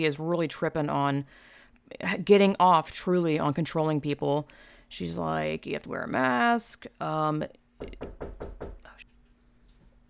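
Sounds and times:
speech: 0:00.0 - 0:08.2
man knocking on the front door: 0:07.8 - 0:08.9.

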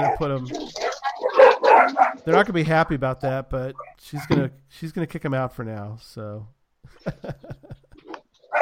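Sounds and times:
speech: 0:00.0 - 0:00.9, 0:02.3 - 0:07.6
dogs barking: 0:00.0 - 0:02.5, 0:08.4 - 0:08.6
laughter: 0:06.9 - 0:08.2.

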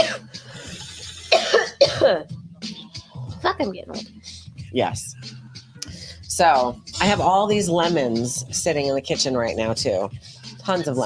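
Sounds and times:
faint throaty rasp: 0:00.0 - 0:01.4
person coughing harshly: 0:00.0 - 0:02.3
speech: 0:02.0 - 0:02.4, 0:03.4 - 0:05.4, 0:06.3 - 0:11.0.

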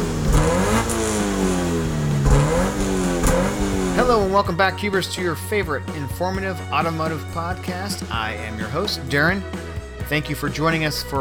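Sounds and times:
car engine revving: 0:00.0 - 0:08.4
speech: 0:04.2 - 0:11.1.

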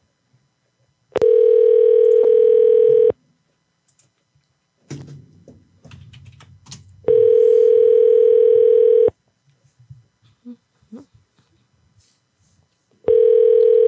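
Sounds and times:
telephone ringback tone during a prank phone call: 0:01.2 - 0:03.2, 0:07.1 - 0:09.1, 0:13.1 - 0:13.8.

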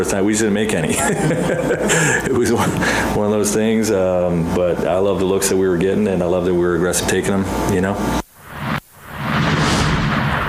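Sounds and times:
speech: 0:00.0 - 0:08.2
laughter: 0:00.8 - 0:02.9
whooshes of rushing air sound effect: 0:08.4 - 0:10.4.

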